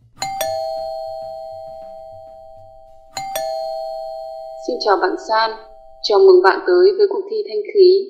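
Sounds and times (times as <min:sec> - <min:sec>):
doorbell two-tone ding-dong chime: 0:00.1 - 0:06.5
speech: 0:04.7 - 0:08.0.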